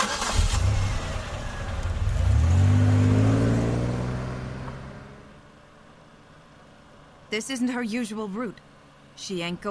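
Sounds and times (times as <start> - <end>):
car engine revving as the car accelerates away: 0.0 - 5.3
car engine turning over and starting: 0.0 - 6.6
speech: 7.3 - 9.6.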